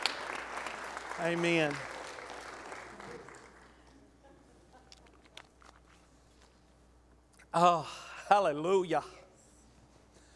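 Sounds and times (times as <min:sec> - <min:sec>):
room full of people applauding: 0:00.0 - 0:03.9
speech: 0:01.2 - 0:01.9, 0:07.6 - 0:09.2.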